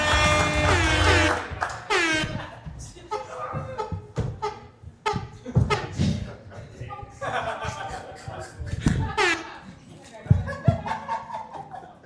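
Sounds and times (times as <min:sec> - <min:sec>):
horn blasts: 0:00.0 - 0:03.6, 0:09.0 - 0:09.6
voices chattering and laughing: 0:01.8 - 0:12.0.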